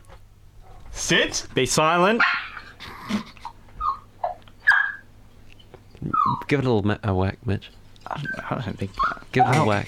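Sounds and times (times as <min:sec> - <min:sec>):
speech: 0:01.0 - 0:02.4, 0:06.5 - 0:09.8
dog whimpering and snorting: 0:02.5 - 0:05.0, 0:06.0 - 0:06.5, 0:08.1 - 0:09.6.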